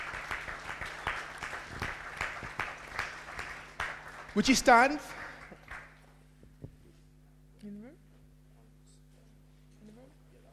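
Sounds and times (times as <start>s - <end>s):
crowd applauding in a large room: 0.0s - 6.0s
sharp loud claps: 0.0s - 6.0s
speech: 4.4s - 5.2s.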